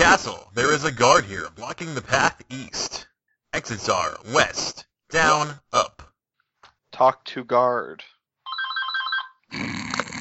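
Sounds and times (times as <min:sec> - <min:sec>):
speech: 0:00.2 - 0:06.1, 0:07.0 - 0:08.1, 0:09.5 - 0:09.8
telephone ringing with an electronic trill: 0:08.4 - 0:09.4.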